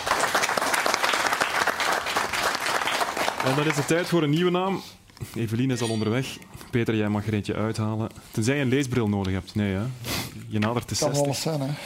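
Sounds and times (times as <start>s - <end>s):
crowd applauding a competitor: 0.0s - 4.2s
speech: 3.4s - 11.8s.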